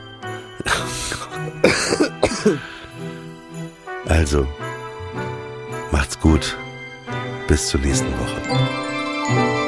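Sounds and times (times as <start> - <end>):
person coughing harshly: 0.6 - 2.9
speech: 1.4 - 2.8, 4.1 - 4.7, 6.2 - 6.6, 7.5 - 9.5
rough throat clearing: 1.7 - 2.8.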